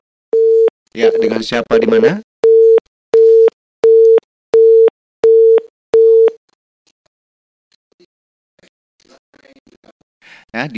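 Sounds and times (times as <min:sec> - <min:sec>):
telephone line tone beeping during incoming call: 0:00.3 - 0:06.4
speech: 0:01.0 - 0:02.3, 0:09.4 - 0:10.7.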